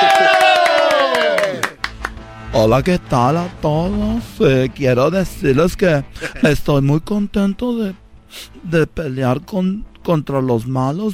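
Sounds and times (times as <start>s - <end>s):
long shouted cheer: 0.0s - 1.8s
audience applauding the introduction of the future first lady: 0.0s - 2.2s
speech: 2.6s - 11.1s.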